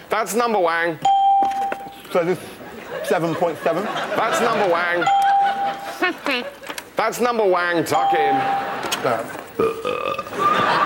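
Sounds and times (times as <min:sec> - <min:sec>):
speech: 0:00.2 - 0:01.1, 0:02.1 - 0:05.2, 0:06.0 - 0:10.1
laughter: 0:02.4 - 0:06.9, 0:08.3 - 0:09.5, 0:10.3 - 0:10.8
loud burp: 0:09.6 - 0:10.3.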